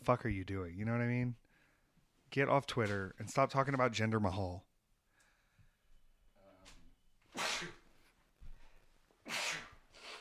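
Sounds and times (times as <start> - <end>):
speech: 0.0 - 1.4, 2.3 - 4.7
person sneezing: 7.3 - 7.9, 9.2 - 10.1.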